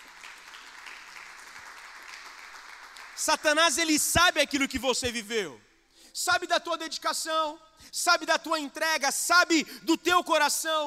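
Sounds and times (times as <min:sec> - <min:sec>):
church audience applauding: 0:00.0 - 0:03.3
speech: 0:03.2 - 0:10.8.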